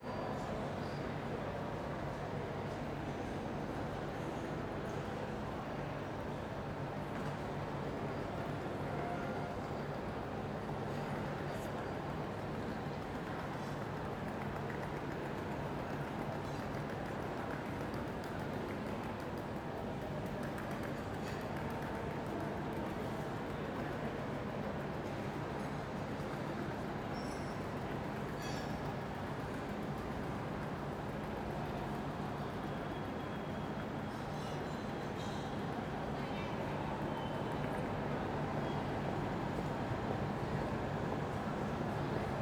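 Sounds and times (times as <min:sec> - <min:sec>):
train ambience: 0:00.0 - 0:42.3.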